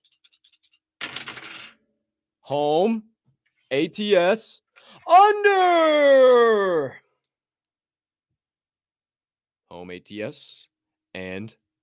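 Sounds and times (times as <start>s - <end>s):
dice clattering onto a hard surface: 1.0s - 1.8s
speech: 2.5s - 3.1s, 3.7s - 7.0s, 9.7s - 11.6s.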